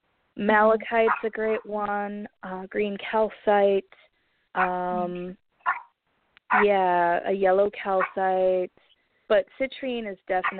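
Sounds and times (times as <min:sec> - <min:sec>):
speech: 0:00.4 - 0:05.4, 0:06.5 - 0:10.5
dog barking: 0:05.6 - 0:05.9.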